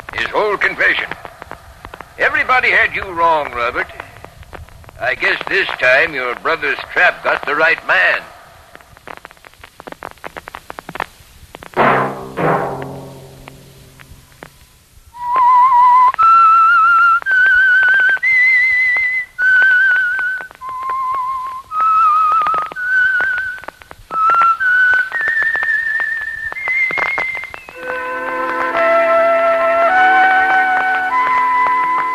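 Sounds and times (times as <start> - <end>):
speech: 0.3 - 1.2, 2.2 - 4.0, 5.0 - 8.3
loud clear whistled theme tune: 15.2 - 32.1.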